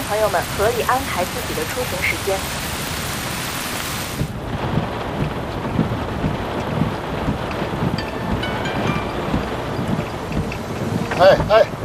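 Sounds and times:
heavy downpour on the road: 0.0s - 11.8s
speech: 0.1s - 2.7s, 11.2s - 11.8s
soft low rumbling: 4.2s - 11.8s.

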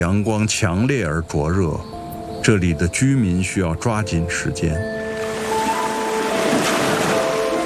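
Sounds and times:
speech: 0.0s - 5.0s
tide waves washing over a sandy beach: 5.1s - 7.6s.

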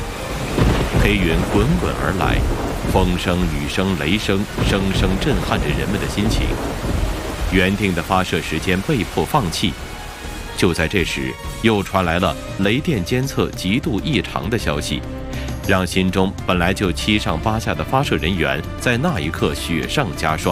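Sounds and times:
thunderstorm wind at the Xichang Satellite Launch Center in China: 0.0s - 10.6s
low rumbles of thunder at the Xichang Satellite Launch Center: 0.0s - 13.1s
dense thunderstorm rain at the Xichang Satellite Launch Center in China: 0.0s - 20.5s
person talking during a rocket launch countdown: 1.0s - 6.6s, 7.5s - 9.8s, 10.6s - 20.5s.

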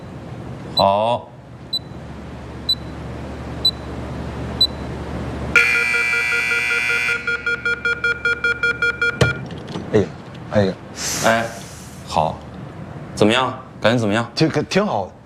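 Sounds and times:
low hum: 0.0s - 15.2s
speech: 0.8s - 1.3s, 9.9s - 11.6s, 13.2s - 15.2s
electronic timer beeping after a door is locked: 1.7s - 2.0s, 2.6s - 3.0s, 3.6s - 3.9s, 4.6s - 4.9s, 5.6s - 9.4s.

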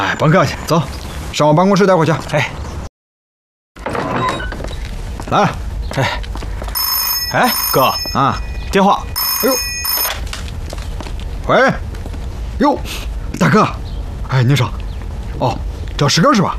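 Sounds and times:
speech: 0.0s - 2.6s, 5.3s - 6.3s, 7.3s - 9.7s, 11.5s - 11.9s, 12.6s - 14.8s, 15.4s - 16.5s
old-style telephone bell ringing: 6.8s - 10.2s.

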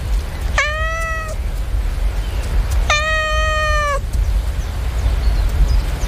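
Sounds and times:
constant low rumble: 0.0s - 6.0s
cat meowing: 0.5s - 1.4s, 2.8s - 4.0s.

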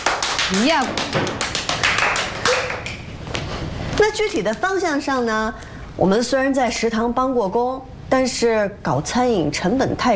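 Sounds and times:
sharp hand claps: 0.0s - 3.5s
speech: 0.5s - 1.9s, 4.0s - 10.1s.

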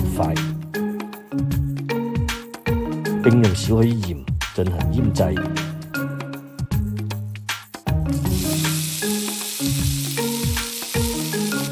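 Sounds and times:
melodic music bed: 0.0s - 11.7s
speech: 3.2s - 5.7s
grass carp pieces pan-frying until golden: 8.2s - 11.7s.

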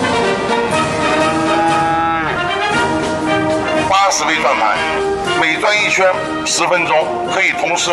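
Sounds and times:
herd of dairy cows mooing at milking time on a dairy farm: 0.7s - 5.2s
speech: 4.1s - 7.9s.

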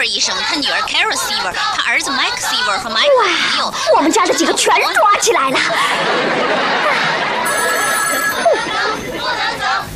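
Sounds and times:
speech: 0.0s - 7.4s
crowd chatter: 0.0s - 9.9s
laughter: 3.8s - 9.7s
telephone ringing: 7.4s - 9.1s.

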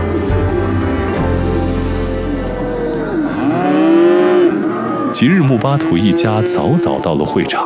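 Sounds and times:
steady low rumble: 0.0s - 5.1s
calves mooing at a cattle show: 0.0s - 7.5s
speech: 5.2s - 7.6s.

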